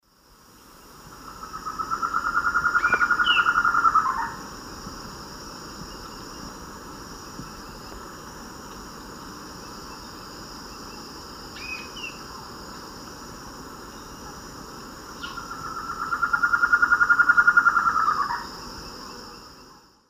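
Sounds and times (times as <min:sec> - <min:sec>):
Thamnophilus amazonicus song in South American Eastern Lowlands: 0:01.1 - 0:04.4, 0:09.6 - 0:12.8, 0:15.2 - 0:19.8.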